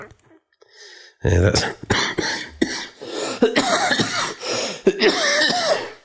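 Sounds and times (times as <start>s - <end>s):
speech: 1.2s - 2.3s
harsh bronchial cough from a person with a chest illness: 1.8s - 6.0s.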